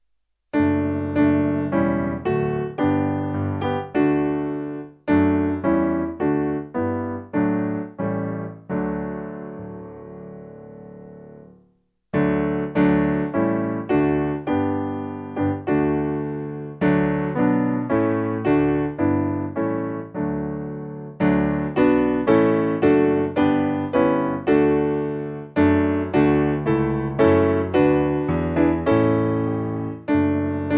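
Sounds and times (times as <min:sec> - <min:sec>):
piano playing: 0:00.5 - 0:30.7.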